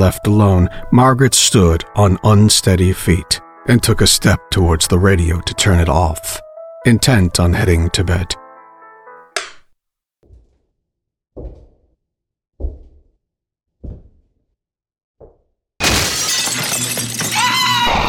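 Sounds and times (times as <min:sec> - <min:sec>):
speech: 0:00.0 - 0:08.4
window pane glass smashing: 0:15.8 - 0:18.0.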